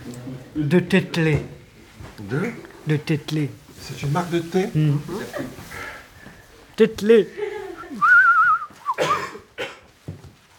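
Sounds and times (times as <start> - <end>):
speech: 0.6 - 1.6, 2.2 - 5.7, 6.8 - 8.0
person whistling a short warbling tune: 7.9 - 9.0.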